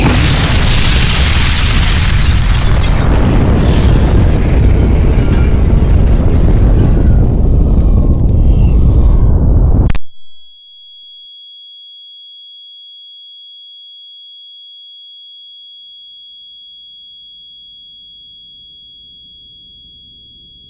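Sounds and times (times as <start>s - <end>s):
warhead detonating in the air seven kilometres above a town: 0.0s - 10.0s.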